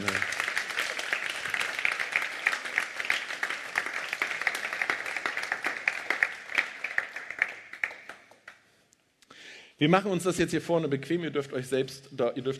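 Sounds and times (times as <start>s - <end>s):
audience applause welcoming guests: 0.0s - 8.7s
speech: 9.8s - 12.5s.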